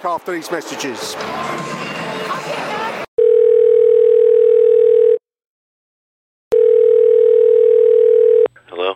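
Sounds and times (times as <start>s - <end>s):
speech: 0.0s - 2.9s
telephone line ringing electronic tones: 3.2s - 5.2s, 6.5s - 8.5s.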